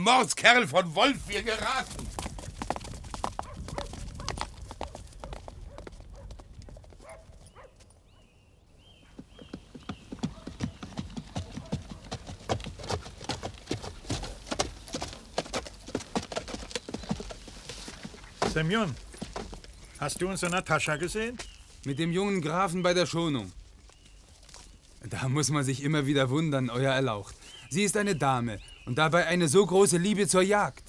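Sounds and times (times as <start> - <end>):
speech: 0.0 - 2.0, 18.6 - 19.1, 20.0 - 23.6, 25.0 - 30.8
hooves of many horses clopping on a wolf hunt: 0.0 - 8.2, 8.8 - 25.0.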